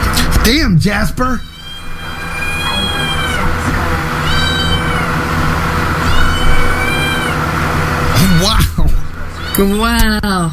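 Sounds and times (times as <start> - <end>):
speech: 0.5 - 1.5, 8.2 - 9.0, 9.6 - 10.5
cat meowing loudly: 1.3 - 3.6, 4.2 - 5.3, 5.9 - 7.5, 8.1 - 8.7, 9.3 - 9.9.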